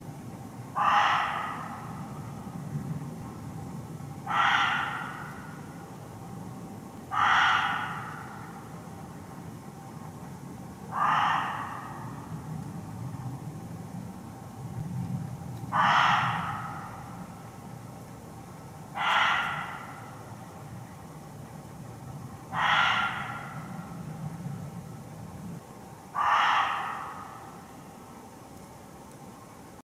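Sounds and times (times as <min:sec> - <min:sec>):
Muntjac deer at Stanwick Lakes: 0:00.8 - 0:02.6, 0:04.0 - 0:06.3, 0:07.0 - 0:09.3, 0:10.8 - 0:12.7, 0:15.6 - 0:29.7.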